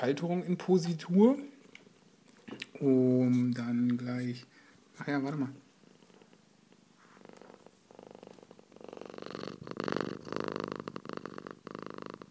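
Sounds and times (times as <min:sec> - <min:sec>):
speech: 0:00.0 - 0:01.5, 0:02.6 - 0:05.6
cat purring: 0:05.6 - 0:12.2.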